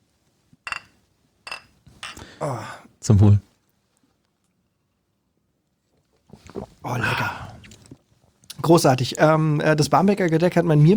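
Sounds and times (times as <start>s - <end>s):
glasses clinking together in a toast: 0.6s - 2.2s
speech: 2.4s - 3.5s, 8.7s - 10.9s.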